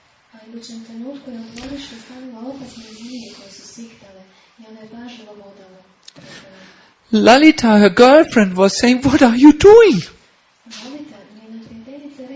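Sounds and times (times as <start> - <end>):
speech: 0.4 - 11.1
person imitating snakes hissing with breathy hisses and voiced tones: 2.6 - 3.9.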